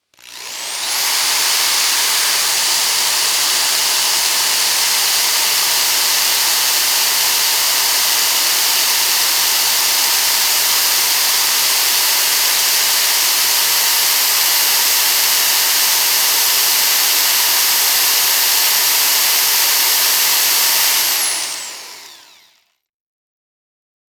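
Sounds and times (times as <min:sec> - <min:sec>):
industrial power drill spinning fast: 0:00.0 - 0:22.8.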